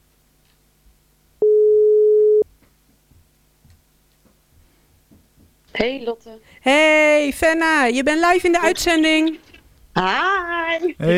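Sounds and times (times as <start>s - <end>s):
faint low noise: 0.0s - 11.1s
telephone ringback tone of an outgoing call: 1.4s - 2.4s
speech: 5.8s - 11.1s.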